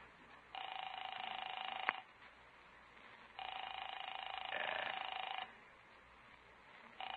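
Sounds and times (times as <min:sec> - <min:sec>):
telephone ringing through a line: 0:00.5 - 0:02.1, 0:03.4 - 0:05.6, 0:07.0 - 0:07.1.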